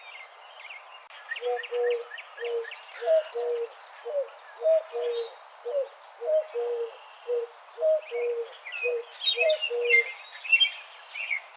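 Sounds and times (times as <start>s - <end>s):
other birds chirping: 0.0s - 11.5s
Eurasian collared dove giving three-part coos: 1.4s - 10.1s.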